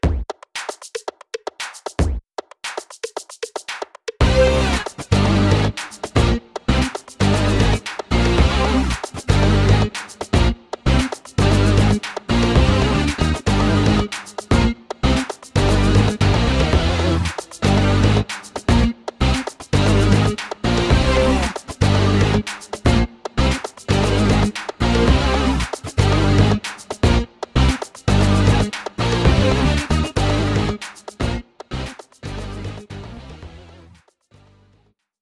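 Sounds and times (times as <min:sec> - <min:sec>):
rock music without drums: 0:04.2 - 0:34.0.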